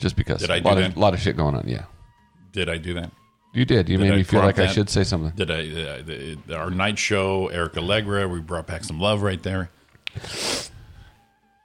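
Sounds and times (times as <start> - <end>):
speech: 0.0 - 1.9, 2.5 - 10.7
person sniffling through the nose: 10.1 - 11.1.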